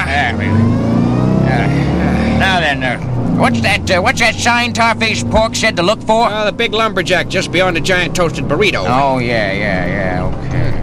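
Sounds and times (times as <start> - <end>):
loaded truck engine revving as it pulls away: 0.0 - 10.8
speech: 3.4 - 10.4.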